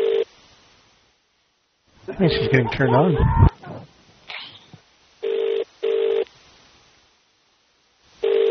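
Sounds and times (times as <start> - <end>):
telephone ringing tone heard down the line during a call: 0.0 - 0.3, 5.2 - 6.3, 8.2 - 8.5
speech: 2.1 - 3.5.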